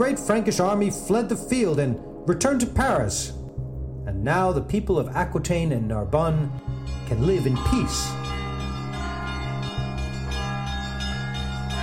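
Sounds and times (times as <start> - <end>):
speech: 0.0 - 3.4, 4.2 - 8.4
church bell ringing with metallic hum of overlapping tones: 6.6 - 11.8.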